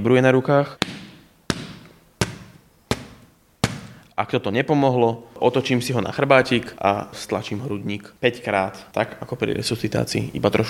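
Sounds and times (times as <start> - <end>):
speech: 0.0 - 0.9, 4.2 - 10.6
back blows struck between the shoulder blades of a child: 0.8 - 4.1.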